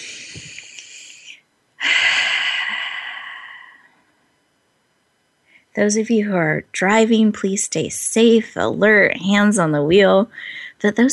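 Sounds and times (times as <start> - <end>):
deep breaths taken in unison during a guided breathing pause: 0.0 - 4.0
speech: 5.8 - 11.1.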